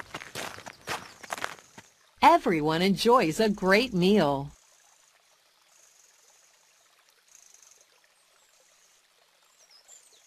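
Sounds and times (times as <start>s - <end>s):
footsteps of children running to eat: 0.0s - 1.6s
speech: 2.3s - 4.6s.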